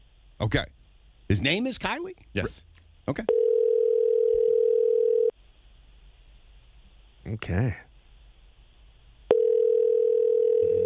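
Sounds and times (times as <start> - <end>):
faint hiss: 0.0 - 10.8
speech: 0.4 - 3.4, 7.2 - 7.8
telephone line ringing: 3.3 - 5.3, 9.3 - 10.8.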